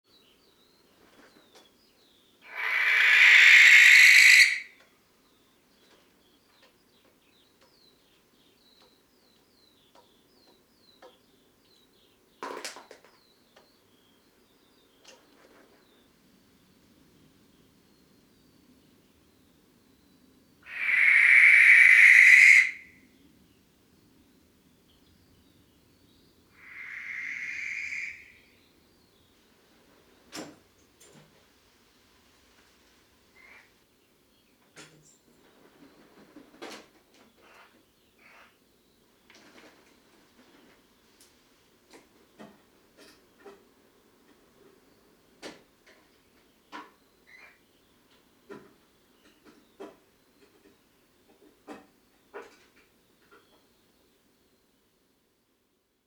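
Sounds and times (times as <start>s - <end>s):
barn owl Tyto alba: 2.4s - 4.7s, 20.6s - 23.0s, 26.6s - 28.6s.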